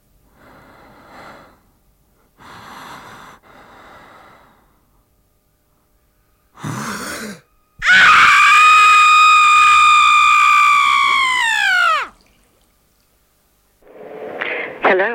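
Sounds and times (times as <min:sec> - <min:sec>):
performed imitation of a woman screaming while giving birth: 0:07.8 - 0:12.2.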